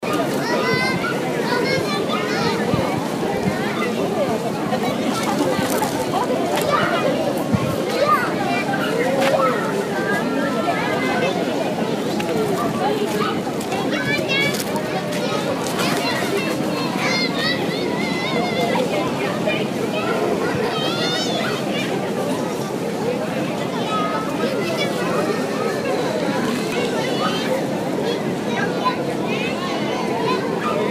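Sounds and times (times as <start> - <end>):
family kids in a park: 0.0 - 30.8.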